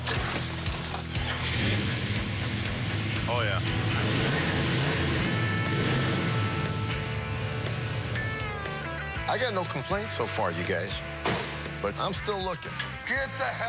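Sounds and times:
custom car engine starting and running: 0.0 - 9.1
speech: 3.3 - 4.1, 9.3 - 13.6.

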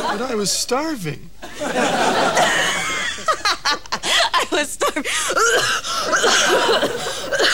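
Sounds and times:
laughter: 0.0 - 0.3, 1.4 - 7.5
speech: 0.1 - 2.6, 4.6 - 7.5
child coughing after laughing: 5.3 - 6.4.

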